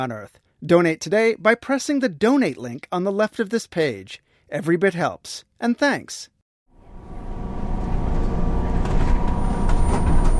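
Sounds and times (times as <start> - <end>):
speech: 0.0 - 6.3
moving city bus engine drone and low rumble: 6.8 - 10.3.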